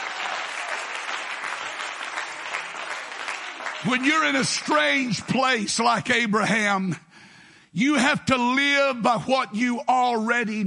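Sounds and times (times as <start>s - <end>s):
crowd clapping during a sermon: 0.0s - 6.3s
speech: 3.8s - 7.1s, 7.8s - 10.6s.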